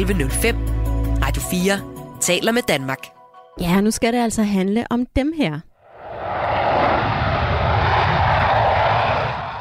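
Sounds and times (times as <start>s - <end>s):
speech: 0.0s - 5.7s
F-16 fighter jets taking off at full power: 5.9s - 9.5s.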